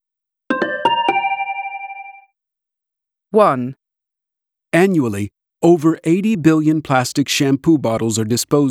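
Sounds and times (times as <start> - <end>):
telephone ringing with bright chiming tones: 0.5 - 2.3
speech: 3.3 - 3.8, 4.7 - 8.6.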